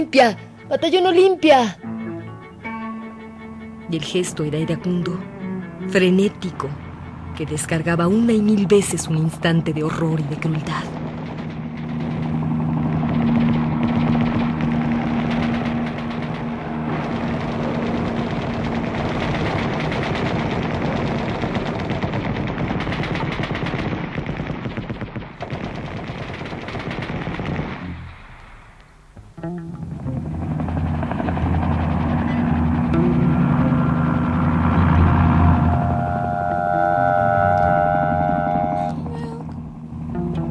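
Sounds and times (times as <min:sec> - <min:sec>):
speech: 0:00.0 - 0:01.9, 0:03.9 - 0:06.8, 0:07.4 - 0:11.0
low droning hum: 0:00.0 - 0:40.4
machine gun fire rattling in rapid bursts: 0:10.1 - 0:29.1, 0:29.9 - 0:36.9.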